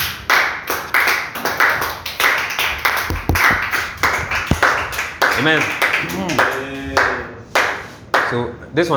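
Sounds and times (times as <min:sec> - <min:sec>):
audience clapping hands: 0:00.0 - 0:08.4
speech: 0:05.4 - 0:06.5, 0:08.3 - 0:08.9.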